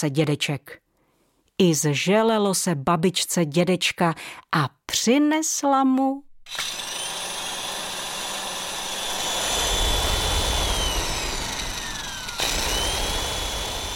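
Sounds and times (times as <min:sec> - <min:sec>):
speech: 0:00.0 - 0:00.8, 0:01.6 - 0:06.8
electric kitchen blender running: 0:06.5 - 0:13.9.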